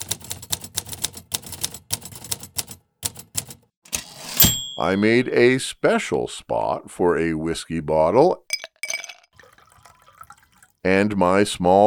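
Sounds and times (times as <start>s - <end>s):
manual typewriter keystrokes: 0.0s - 4.8s
speech: 4.8s - 8.4s, 10.8s - 11.8s.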